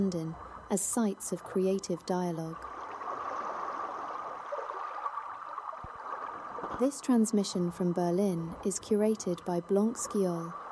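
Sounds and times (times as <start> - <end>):
speech: 0.0 - 2.8, 6.8 - 10.6
Spree River water flowing around a floating arts platform in Berlin: 2.6 - 6.9.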